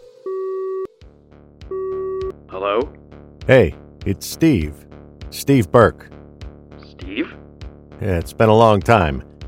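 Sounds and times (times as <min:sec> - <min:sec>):
telephone line ringing through the earpiece: 0:00.2 - 0:00.9, 0:01.7 - 0:02.3
speech: 0:02.5 - 0:06.2, 0:07.2 - 0:07.4, 0:08.0 - 0:09.3.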